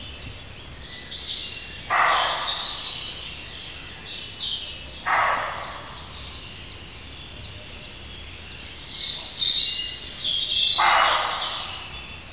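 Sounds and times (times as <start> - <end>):
birds chirping and twittering: 0.0 - 12.3
male roe deer barking: 1.9 - 2.8, 5.1 - 6.0, 10.8 - 11.8.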